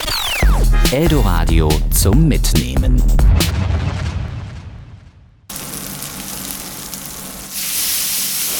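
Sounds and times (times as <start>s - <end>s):
speech: 0.9s - 3.8s
meat sizzling in a hot pan with popping fat in Dortmund Germany: 5.5s - 8.5s.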